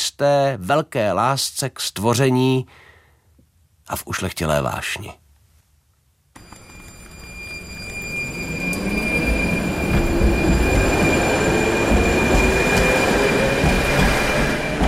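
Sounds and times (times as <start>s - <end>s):
speech: 0.2s - 2.8s, 3.9s - 5.2s
tram wheels squealing at turning loop in Lidové sady, Liberec: 6.4s - 14.8s.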